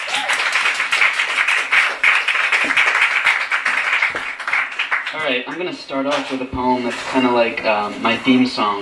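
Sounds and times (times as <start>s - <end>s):
crowd applauding: 0.0s - 5.7s
speech: 5.2s - 8.8s.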